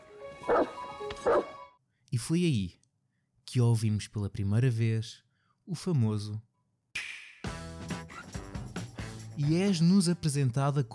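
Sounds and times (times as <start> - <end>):
dog barking: 0.5 - 1.6
speech: 2.2 - 2.8, 3.5 - 6.5, 9.4 - 10.9.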